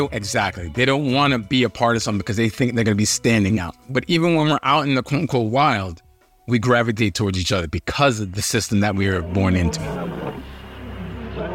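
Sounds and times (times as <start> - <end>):
speech: 0.0 - 10.2
lion roaring with a deep rumbling growl: 8.9 - 11.5.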